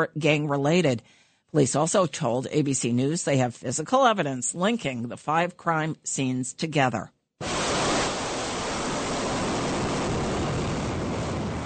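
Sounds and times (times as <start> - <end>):
speech: 0.0 - 7.5
ballistic missile launch roar: 7.4 - 11.6.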